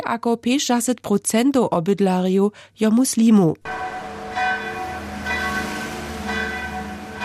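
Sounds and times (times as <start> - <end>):
speech: 0.1 - 4.0
bells of an old Serbian Orthodox church in Sarajevo ringing for mass: 3.6 - 7.2.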